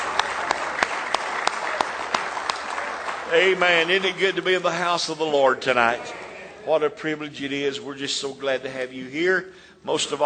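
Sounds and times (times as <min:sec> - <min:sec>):
large crowd clapping hands in praise: 0:00.0 - 0:06.3
speech: 0:03.3 - 0:10.2.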